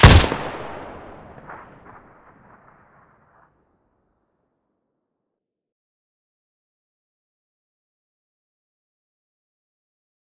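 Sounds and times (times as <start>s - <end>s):
weapon muzzle blast: 0.0s - 1.7s.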